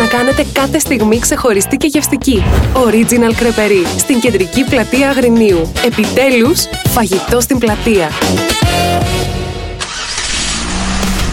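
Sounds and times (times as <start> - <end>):
speech: 0.4 - 8.9
small kart engines starting up and idling: 9.8 - 11.3.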